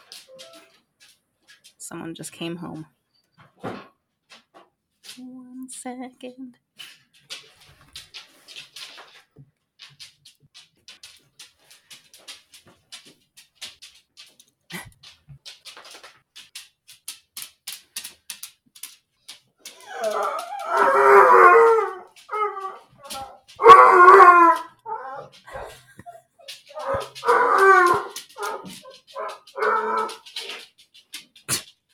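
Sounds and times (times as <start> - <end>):
speech: 1.9 - 3.0, 5.2 - 6.7
dog howling and yodelling excitedly: 19.7 - 25.6, 26.7 - 30.4.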